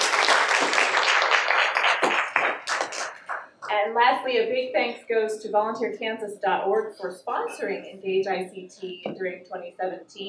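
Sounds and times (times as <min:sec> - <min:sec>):
audience applause: 0:00.0 - 0:03.5
speech: 0:03.8 - 0:10.2.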